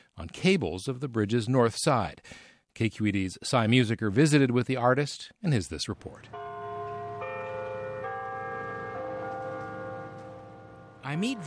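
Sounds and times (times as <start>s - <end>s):
speech: 0.2s - 6.5s, 11.1s - 11.4s
clock tower bells ringing: 6.2s - 11.4s.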